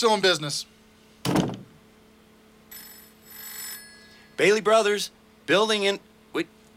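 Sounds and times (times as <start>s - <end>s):
speech: 0.0s - 0.8s, 4.4s - 6.6s
dull thunk: 1.2s - 1.7s
telephone bell ringing: 2.7s - 4.5s.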